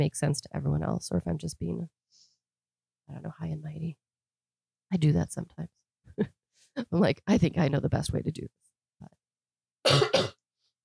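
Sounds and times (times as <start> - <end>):
speech: 0.0 - 2.1, 3.1 - 4.0, 4.9 - 9.2
person coughing harshly: 9.9 - 10.4.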